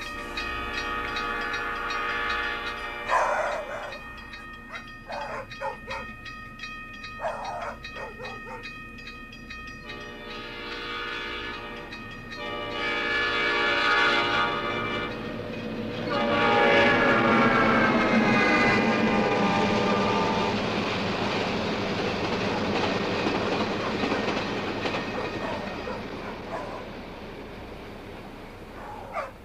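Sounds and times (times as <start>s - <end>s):
high-speed train horn blasts: 0.0s - 5.4s, 9.8s - 20.7s
high-speed train rushing past a crossing: 0.0s - 29.4s.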